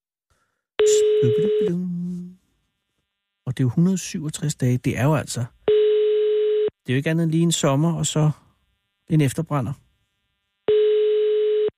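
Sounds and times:
telephone dialing tone: 0.8 - 2.3, 10.7 - 11.7
speech: 1.2 - 2.4, 3.5 - 5.6, 6.9 - 8.4, 9.1 - 9.8.

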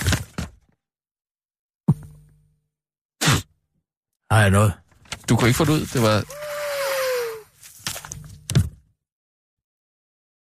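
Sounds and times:
speech: 4.3 - 6.6
forceful breathy nose blow with whistling tone: 6.2 - 7.5.

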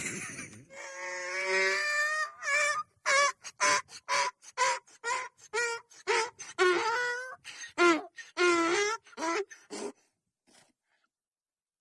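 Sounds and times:
donkey braying: 0.7 - 10.0.

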